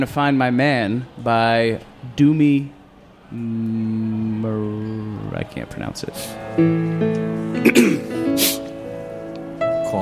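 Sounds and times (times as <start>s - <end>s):
speech: 0.0s - 8.6s
gruff throat clearing: 7.6s - 8.1s.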